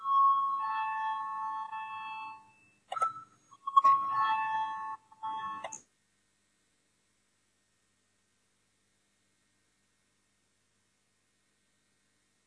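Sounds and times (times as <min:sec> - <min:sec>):
parliament electronic voting bell chiming: 0:00.0 - 0:05.8.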